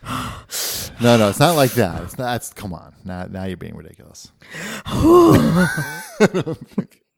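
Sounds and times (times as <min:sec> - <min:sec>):
person gasping for air with a groaning voice: 0:00.0 - 0:02.0, 0:04.4 - 0:05.8
speech: 0:01.0 - 0:07.0
laughter: 0:05.2 - 0:07.0.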